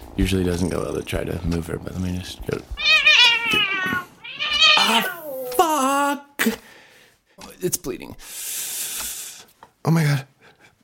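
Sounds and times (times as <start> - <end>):
speech: 0.2 - 2.9, 3.5 - 4.1, 7.6 - 8.4, 9.8 - 10.3
cat meowing loudly: 2.8 - 5.5.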